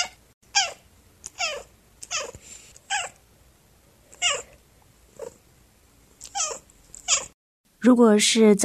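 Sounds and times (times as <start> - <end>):
cat giving short chirpy meows: 0.0 - 3.2, 4.1 - 4.6, 6.2 - 7.4
speech: 7.8 - 8.6.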